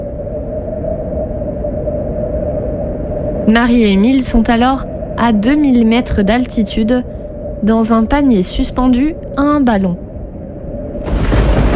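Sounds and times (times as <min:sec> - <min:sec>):
strong howling wind of a coming storm: 0:00.0 - 0:11.7
speech: 0:03.5 - 0:10.0.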